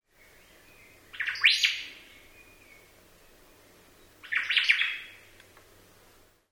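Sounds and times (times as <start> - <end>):
omao in Hawaii: 0.7 - 2.9, 4.2 - 5.2.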